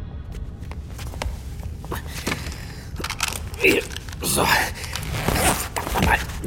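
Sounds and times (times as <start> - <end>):
spacesuit fabric rustling: 0.4 - 6.4
stuck spacesuit zipper being tugged closed: 4.8 - 6.4.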